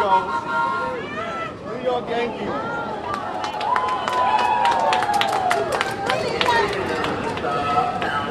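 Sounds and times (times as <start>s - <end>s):
speech: 0.0s - 0.7s, 1.8s - 2.8s
shouts and whoops: 2.6s - 6.0s
lively crowd cheering and clapping as subway train arrives: 2.8s - 8.2s.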